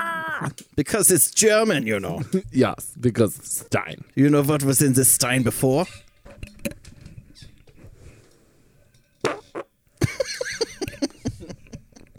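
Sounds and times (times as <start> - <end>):
faint noise: 0.0 - 12.1
speech: 0.4 - 6.0
loud sputtering wet fart: 9.2 - 9.7
laughter: 10.0 - 12.1.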